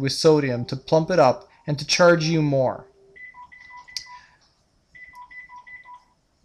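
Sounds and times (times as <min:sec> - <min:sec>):
speech: 0:00.0 - 0:02.9
phone electronic beeping tones: 0:03.0 - 0:04.3, 0:05.0 - 0:06.2.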